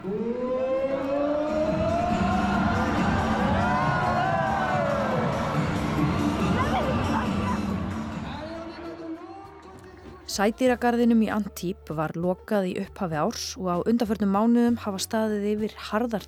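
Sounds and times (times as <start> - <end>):
audience cheering at a killer whale show in a marine park in Antibes: 0.0 - 9.7
speech: 10.4 - 16.2.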